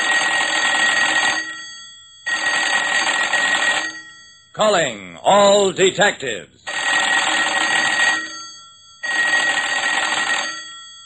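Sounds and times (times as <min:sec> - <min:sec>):
old-fashioned telephone bell ringing: 0:00.0 - 0:04.5, 0:06.7 - 0:11.0
speech: 0:04.6 - 0:06.5.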